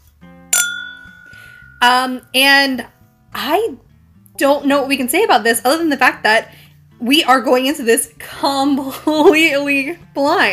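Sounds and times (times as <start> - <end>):
glasses of bourbon clinking in a toast: 0.6 - 2.1
speech: 1.8 - 3.8, 4.4 - 10.5.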